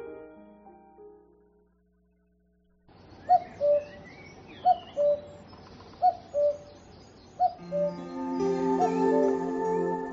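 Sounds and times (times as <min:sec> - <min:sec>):
faint birdsong chirping: 0:01.3 - 0:10.1
cuckoo calling its two-note song: 0:03.2 - 0:10.1
soft sustained musical drone: 0:07.6 - 0:10.1.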